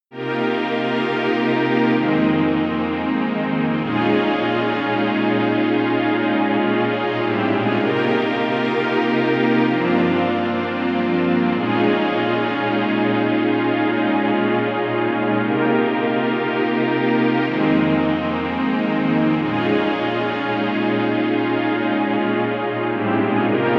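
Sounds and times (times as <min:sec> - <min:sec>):
dark strings: 0:00.1 - 0:23.7.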